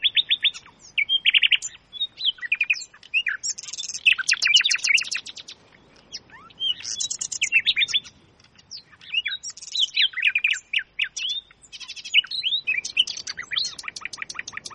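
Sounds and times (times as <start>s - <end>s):
chorus of many birds chirping and singing: 0.0s - 14.7s.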